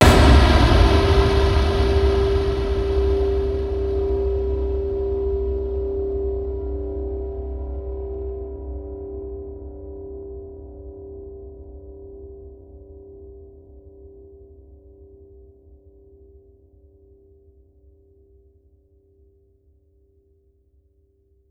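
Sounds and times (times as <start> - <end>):
cinematic valve impacts: 0.0 - 6.2.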